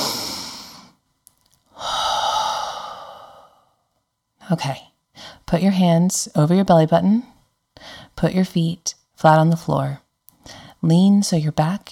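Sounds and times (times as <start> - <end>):
deep breath in and out: 0.0 - 1.0, 1.7 - 3.9
speech: 4.5 - 4.9, 5.5 - 7.3, 8.2 - 10.0, 10.8 - 11.8.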